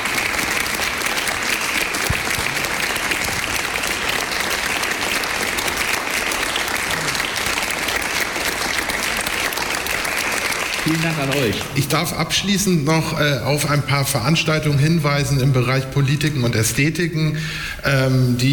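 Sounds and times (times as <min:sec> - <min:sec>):
audience applause for a guest at an evening event: 0:00.0 - 0:12.4
speech: 0:10.9 - 0:18.5.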